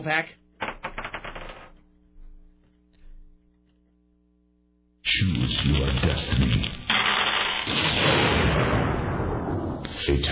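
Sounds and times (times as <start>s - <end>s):
speech: 0.0s - 0.4s, 5.1s - 6.8s, 7.6s - 8.8s, 10.0s - 10.3s
dice being rolled: 0.6s - 1.8s, 6.9s - 7.7s.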